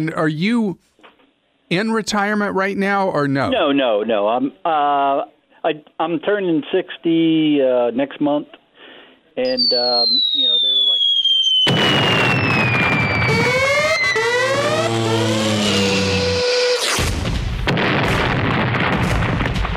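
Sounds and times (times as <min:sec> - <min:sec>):
speech: 0:00.0 - 0:00.9, 0:01.7 - 0:08.6, 0:09.4 - 0:10.6
fireworks whistling: 0:09.5 - 0:18.2
fireworks crackling bursts: 0:09.6 - 0:19.7.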